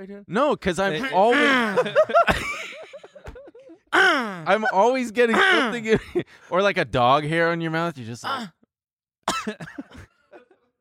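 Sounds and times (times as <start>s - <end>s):
speech: 0.0s - 2.7s, 3.9s - 8.6s, 9.4s - 10.0s
laughter: 1.0s - 6.3s
person coughing: 4.0s - 4.4s, 5.3s - 5.8s, 9.3s - 10.6s.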